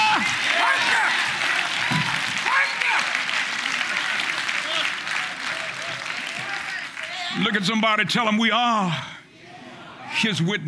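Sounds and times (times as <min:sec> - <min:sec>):
audience clapping: 0:00.0 - 0:07.7
speech: 0:07.5 - 0:09.1, 0:10.2 - 0:10.6.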